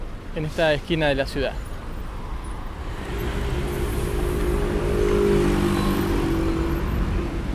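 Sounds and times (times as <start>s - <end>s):
city street traffic noise: 0.0s - 7.5s
speech: 0.4s - 1.7s
motorcycle engine revving past on a busy city street: 2.9s - 7.5s.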